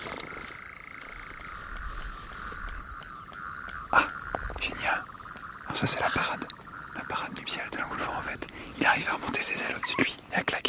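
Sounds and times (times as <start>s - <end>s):
low toad croaks: 0.0s - 10.3s
nighttime chorus of tree frogs trilling: 0.0s - 10.6s
speech: 5.8s - 10.6s.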